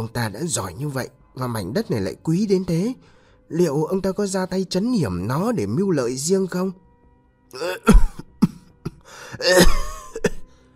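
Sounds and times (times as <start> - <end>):
speech: 0.0 - 6.8, 7.5 - 8.2, 9.1 - 9.9
man clearing his throat: 7.6 - 10.5.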